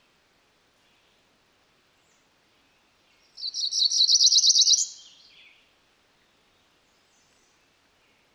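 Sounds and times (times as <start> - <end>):
female Cerulean warbler singing a rapid buzzy series of high notes: 3.4 - 5.3.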